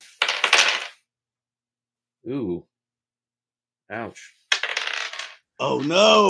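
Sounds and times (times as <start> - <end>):
dice clattering across a hard tabletop: 0.1 - 1.0, 4.5 - 5.4
speech: 2.2 - 2.7, 3.9 - 4.4, 5.6 - 6.2
person exclaiming: 5.6 - 6.2.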